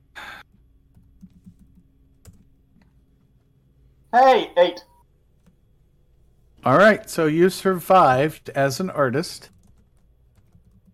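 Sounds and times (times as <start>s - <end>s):
typing on a computer keyboard: 0.9s - 2.9s, 9.5s - 10.9s
speech: 4.1s - 4.9s, 6.6s - 9.6s.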